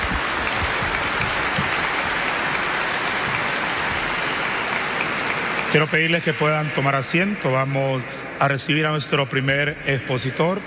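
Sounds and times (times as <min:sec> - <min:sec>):
audience applause: 0:00.0 - 0:07.0
speech: 0:05.7 - 0:10.6.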